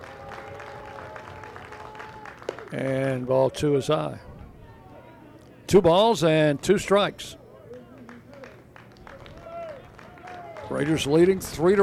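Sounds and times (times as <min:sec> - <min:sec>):
large stadium crowd clapping in a staccato pattern: 0:00.0 - 0:03.4, 0:07.7 - 0:11.4
speech: 0:02.7 - 0:04.3, 0:05.7 - 0:07.4, 0:10.7 - 0:11.8.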